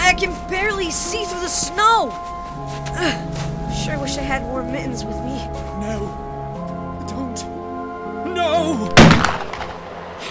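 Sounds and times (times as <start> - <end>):
speech: 0.2 - 6.3, 7.4 - 7.6, 8.4 - 9.4
gunshot echoing across open terrain: 9.0 - 9.9.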